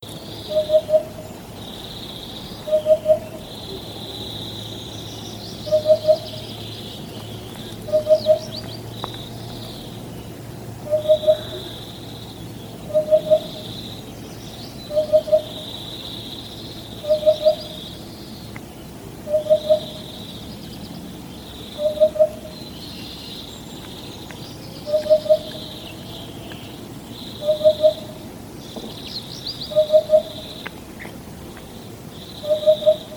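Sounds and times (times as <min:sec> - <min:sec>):
hoopoe calling: 0:00.4 - 0:01.2, 0:01.8 - 0:04.9, 0:05.5 - 0:10.0, 0:10.8 - 0:14.0, 0:14.8 - 0:17.9, 0:19.2 - 0:20.2, 0:21.7 - 0:23.1, 0:23.8 - 0:31.2, 0:32.3 - 0:33.1.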